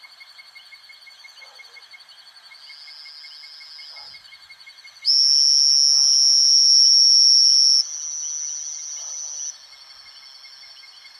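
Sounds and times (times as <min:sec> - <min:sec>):
insect chorus: 0:00.0 - 0:11.1
two-colored oval frog giving a buzzing trill: 0:05.1 - 0:09.5.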